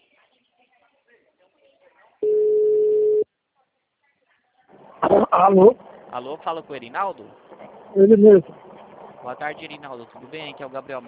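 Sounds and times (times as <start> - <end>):
telephone ringback tone of an outgoing call to a client: 2.2 - 3.2
speech: 5.3 - 11.0.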